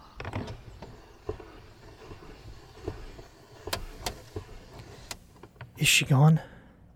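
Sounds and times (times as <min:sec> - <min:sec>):
car power window rolling up: 0:00.2 - 0:05.5
speech: 0:05.8 - 0:06.5.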